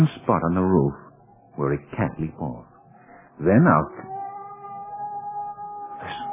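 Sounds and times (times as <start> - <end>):
speech: 0.0 - 1.0, 1.6 - 2.7, 3.4 - 4.1
cat howling: 3.4 - 6.3.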